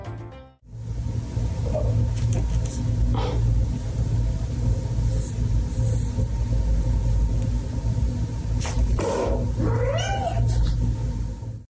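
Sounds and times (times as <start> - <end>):
steady low engine-like rumble: 0.7 - 11.7
cat meowing: 9.6 - 10.7.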